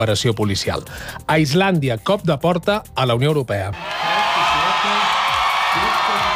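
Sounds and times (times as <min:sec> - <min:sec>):
speech: 0:00.0 - 0:04.2
crowd in Iceland cheering and shouting with joy after a referendum result: 0:03.8 - 0:06.3.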